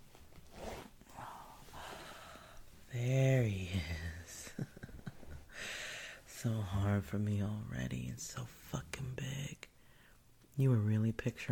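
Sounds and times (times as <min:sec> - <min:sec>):
clothing rustle: 0:00.0 - 0:02.9
trouser zipper being pulled down: 0:00.4 - 0:01.0
speech: 0:02.9 - 0:04.7, 0:06.4 - 0:09.6, 0:10.6 - 0:11.5.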